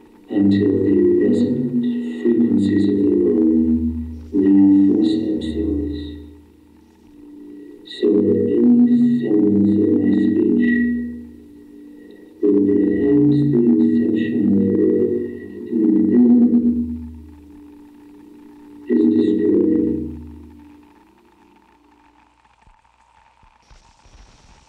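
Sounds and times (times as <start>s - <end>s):
droning electronic hum and roar resembling shortwave radio from a sound art piece: 0.0s - 23.6s
crackling: 0.0s - 24.6s
thin steady whine: 0.0s - 24.6s
speech: 0.3s - 1.5s.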